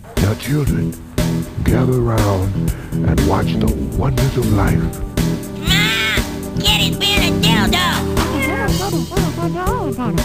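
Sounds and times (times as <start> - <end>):
speech: 0.3 - 5.1, 6.6 - 10.2
cat meowing: 5.6 - 6.3
laughter: 8.2 - 10.2.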